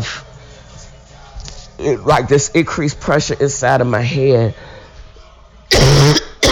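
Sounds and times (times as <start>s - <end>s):
speech: 1.8s - 4.7s
person sick with COVID coughing: 5.7s - 6.4s.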